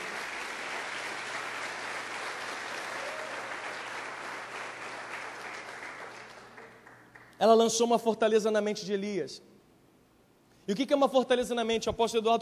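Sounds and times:
congregation applauding: 0:00.0 - 0:07.4
speech: 0:07.4 - 0:09.5, 0:10.7 - 0:12.4.

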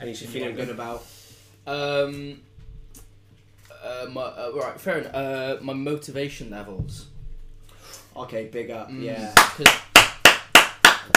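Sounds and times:
speech: 0:00.0 - 0:03.0, 0:03.8 - 0:07.1, 0:08.2 - 0:09.9
hand clapping: 0:09.3 - 0:11.1.

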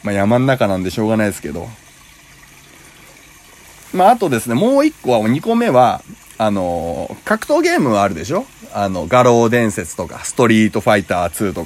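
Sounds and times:
speech: 0:00.0 - 0:01.8, 0:03.9 - 0:11.6
water flowing in a mountain stream: 0:00.0 - 0:11.6.

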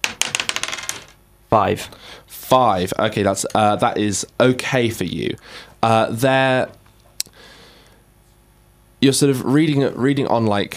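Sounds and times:
dice rolled across a hard tabletop for a fortune roll: 0:00.0 - 0:01.2
speech: 0:01.5 - 0:06.8, 0:09.0 - 0:10.7.

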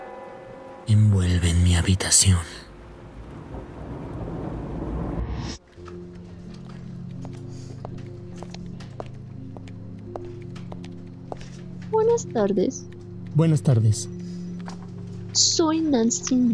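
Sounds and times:
cathedral bells pealing: 0:00.0 - 0:04.9, 0:05.8 - 0:16.5
speech: 0:00.9 - 0:02.7, 0:12.2 - 0:14.2, 0:15.4 - 0:16.5
dense rain pouring on the ground: 0:01.2 - 0:05.6.

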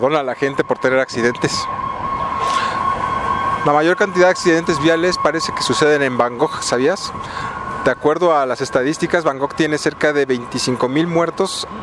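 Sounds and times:
speech: 0:00.0 - 0:01.8, 0:03.6 - 0:11.8
ambulance siren wailing: 0:00.0 - 0:11.8
street noise: 0:00.0 - 0:11.8.

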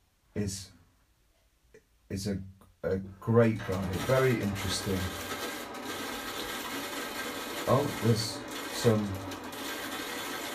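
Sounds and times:
speech: 0:00.4 - 0:00.8, 0:02.1 - 0:05.4, 0:07.7 - 0:09.4
water rushing through household pipes: 0:03.6 - 0:10.5.

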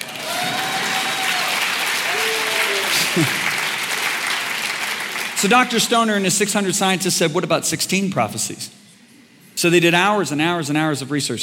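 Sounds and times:
large audience applauding: 0:00.0 - 0:05.8
speech: 0:03.2 - 0:03.4, 0:05.4 - 0:08.8, 0:09.6 - 0:11.4.

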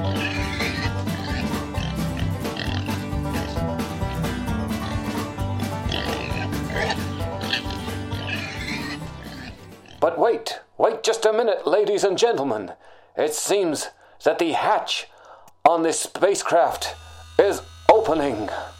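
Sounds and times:
pig oinking and grunting: 0:00.0 - 0:05.2, 0:05.8 - 0:10.1
speech: 0:10.0 - 0:18.7.

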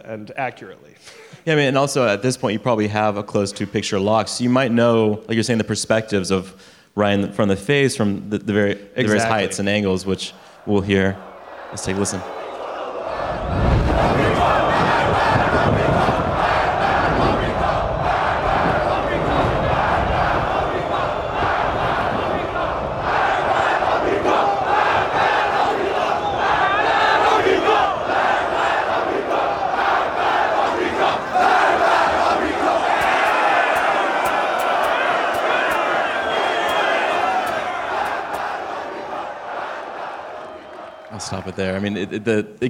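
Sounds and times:
speech: 0:00.1 - 0:12.4, 0:41.7 - 0:42.6
crowd chanting in unison in a film scene: 0:09.0 - 0:41.1.

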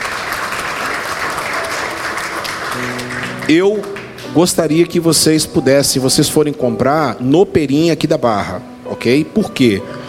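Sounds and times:
church audience applauding: 0:00.0 - 0:04.6
speech: 0:02.8 - 0:10.0.

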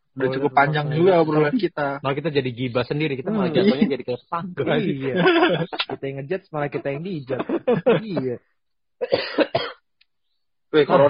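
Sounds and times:
speech: 0:00.2 - 0:09.6, 0:10.7 - 0:11.0
laughter: 0:04.7 - 0:08.4
harsh coughing: 0:07.3 - 0:08.3, 0:09.0 - 0:09.8.

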